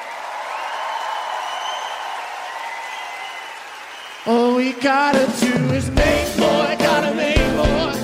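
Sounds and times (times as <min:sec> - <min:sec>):
faint audience cheers: 0:00.0 - 0:04.9
large audience applauding: 0:00.0 - 0:05.2
speech: 0:04.2 - 0:07.9.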